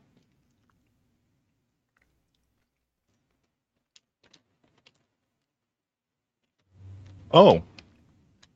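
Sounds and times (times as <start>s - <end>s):
chewing jelly beans with crunchy shells and chewy centers: 0.0s - 5.2s
speech: 7.3s - 7.7s.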